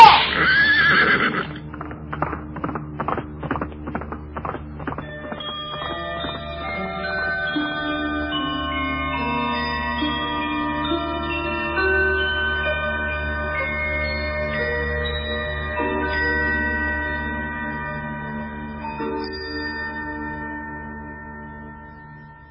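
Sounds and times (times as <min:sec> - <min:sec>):
horse whinnying: 0:00.0 - 0:02.0
horse hooves clip-clopping as it is ridden: 0:00.0 - 0:07.6
sustained musical tones: 0:00.4 - 0:22.4.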